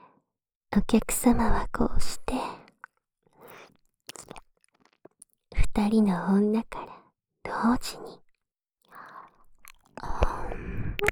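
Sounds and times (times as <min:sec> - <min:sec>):
speech: 0:00.8 - 0:02.6, 0:05.8 - 0:08.2
wet licking and mouth sounds at the ear: 0:03.4 - 0:05.2.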